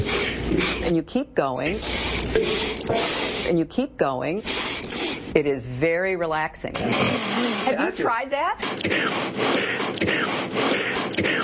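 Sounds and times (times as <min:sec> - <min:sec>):
alternate nostril breathing, inhaling and exhaling: 0:00.0 - 0:00.9, 0:01.7 - 0:03.6, 0:04.4 - 0:05.3, 0:06.8 - 0:07.9, 0:08.6 - 0:11.4
speech: 0:00.5 - 0:11.4.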